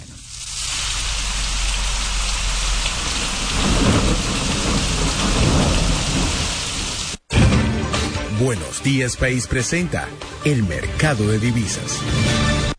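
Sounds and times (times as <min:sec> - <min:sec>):
heavy rain pouring: 0:00.0 - 0:07.3
low thunder rumbling: 0:03.0 - 0:07.2
speech: 0:08.4 - 0:12.6.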